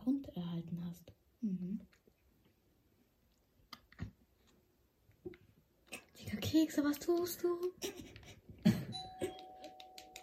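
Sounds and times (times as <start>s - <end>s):
speech: 0.6s - 2.0s, 6.6s - 8.1s
doorbell chiming: 8.9s - 10.2s.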